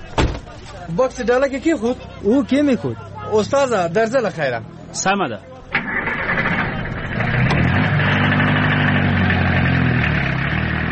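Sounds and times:
speech: 0:00.9 - 0:05.5
taxi car engine running: 0:06.3 - 0:10.8.

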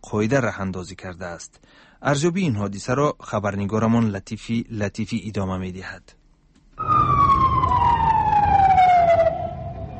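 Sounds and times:
speech: 0:00.0 - 0:06.2
ambulance and police vehicle sirens wailing in Sanaa Yemen: 0:06.8 - 0:09.9.

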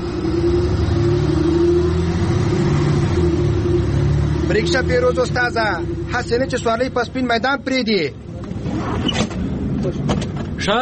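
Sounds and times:
car arriving with engine rumbling: 0:00.0 - 0:10.8
speech: 0:04.6 - 0:10.8.

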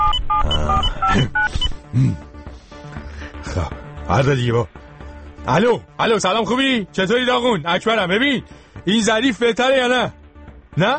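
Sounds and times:
telephone keypad dual-tone bleeps dialing a number: 0:00.0 - 0:01.6
speech: 0:01.2 - 0:01.4, 0:02.0 - 0:02.3, 0:03.6 - 0:04.8, 0:05.4 - 0:10.2, 0:10.8 - 0:10.9.

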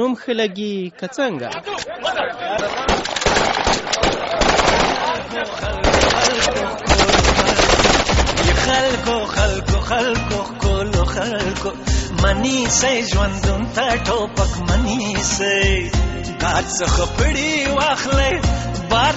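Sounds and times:
speech: 0:00.0 - 0:04.1, 0:08.6 - 0:19.1
celebratory automatic gunfire by young people: 0:02.7 - 0:05.2, 0:05.8 - 0:08.8.

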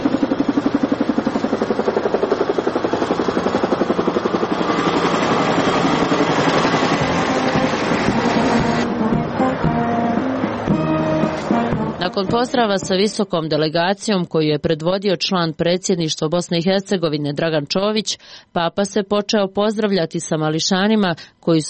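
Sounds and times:
airliner engine roar arriving at an airport: 0:00.0 - 0:13.2
speech: 0:12.2 - 0:21.6.

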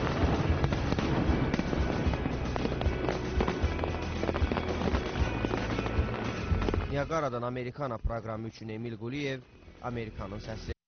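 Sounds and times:
fireworks bursting over a waterfall at a weekend show: 0:00.0 - 0:07.4
speech: 0:07.0 - 0:10.7.

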